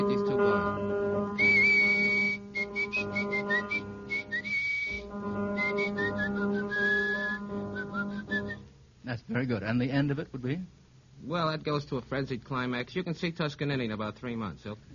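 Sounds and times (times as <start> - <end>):
steady low hum: 0.0 - 9.0
person whistling a bouncy rhythmic tune with sliding notes: 1.4 - 8.7
speech: 9.3 - 14.9.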